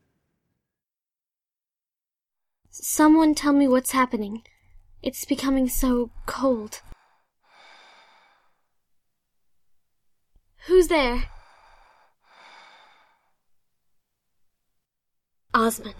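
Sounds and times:
speech: 2.8s - 6.9s, 10.6s - 11.4s, 15.6s - 15.9s
slow heavy rasping breaths: 6.8s - 8.7s, 11.2s - 13.4s.

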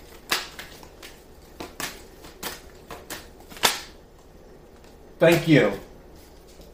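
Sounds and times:
tarot cards being shuffled and drawn from a deck: 0.0s - 6.7s
tarot card slap: 0.2s - 4.0s
speech: 5.2s - 5.9s.

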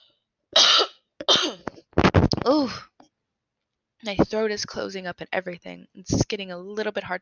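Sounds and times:
harsh coughs into a microphone: 0.6s - 1.8s
speech: 2.6s - 2.9s, 4.0s - 7.2s.

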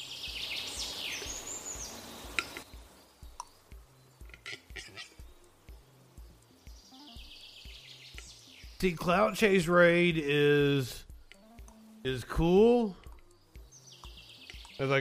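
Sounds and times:
pet bird chirping in high trills: 0.0s - 15.0s
steady low rhythmic background: 0.0s - 15.0s
speech: 8.8s - 11.0s, 12.0s - 13.0s, 14.8s - 15.0s.

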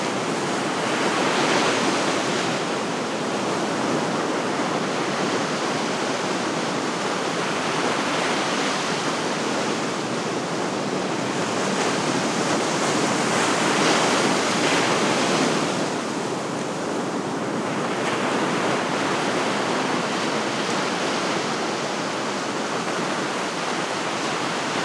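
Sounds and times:
ocean waves washing onto a sandy beach at night: 0.0s - 24.8s.

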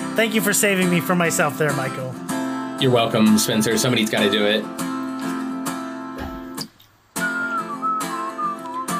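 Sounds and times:
speech: 0.1s - 4.9s
person whistling a wavering tuneful line: 7.2s - 8.9s.

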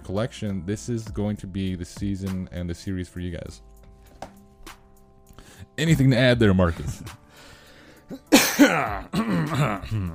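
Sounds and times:
speech: 0.1s - 3.7s, 5.8s - 7.5s, 8.1s - 10.1s
person clearing throat with a raspy, throaty rumble: 8.1s - 10.1s
person coughing: 8.1s - 10.1s.

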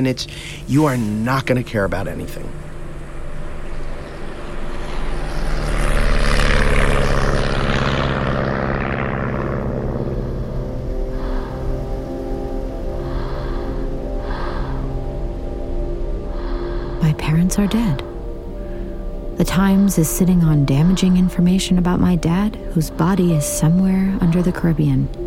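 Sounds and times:
speech: 0.0s - 2.6s, 17.3s - 18.1s, 19.4s - 25.2s
airplane engine drone during flight: 0.0s - 25.2s
faint hissy pulses: 10.0s - 23.1s.

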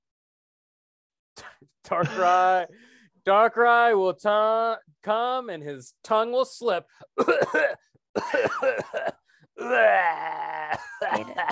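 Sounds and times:
speech: 1.6s - 11.5s
person coughing in harsh voiced bursts: 7.2s - 9.9s, 10.6s - 11.5s
person groaning: 9.6s - 11.5s.

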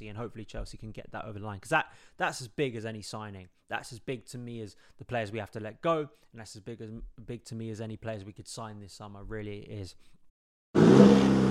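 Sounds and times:
speech: 0.0s - 10.8s
2023 Chevy Silverado pickup truck 2.7-liter high-output turbo engine revving: 10.8s - 11.4s.

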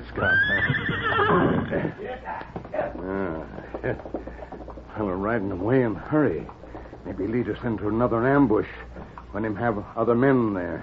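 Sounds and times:
speech: 0.1s - 0.8s, 1.7s - 4.3s, 5.0s - 10.8s
horse neighing: 0.2s - 2.0s.

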